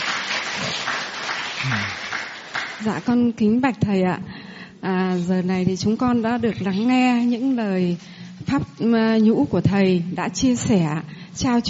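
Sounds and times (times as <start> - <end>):
audience applause at a Buddhist teacher's dharma talk: 0.0 - 2.8
speech: 2.8 - 11.6.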